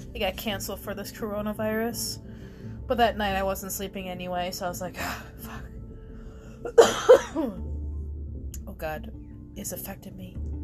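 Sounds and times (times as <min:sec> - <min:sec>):
speech: 0:00.2 - 0:02.3, 0:02.9 - 0:05.7, 0:06.6 - 0:07.7, 0:08.7 - 0:10.5
person coughing: 0:06.7 - 0:07.6.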